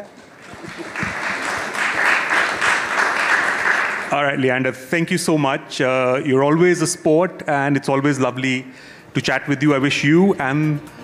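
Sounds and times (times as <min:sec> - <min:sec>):
speech: 0:00.0 - 0:01.0, 0:04.1 - 0:11.0
audience applause: 0:00.2 - 0:04.2.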